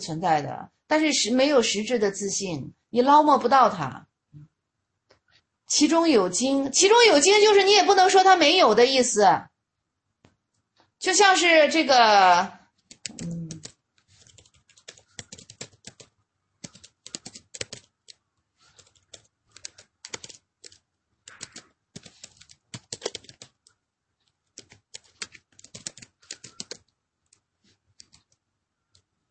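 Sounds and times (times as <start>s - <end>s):
speech: 0.0s - 4.5s, 5.7s - 9.5s, 11.0s - 13.4s
typing on a computer keyboard: 12.8s - 29.1s.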